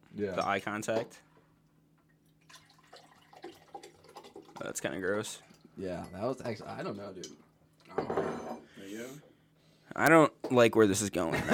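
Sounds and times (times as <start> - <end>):
speech: 0.2 - 1.3, 4.6 - 9.3, 9.9 - 11.5
water trickling and splashing into an empty glass: 2.2 - 6.3.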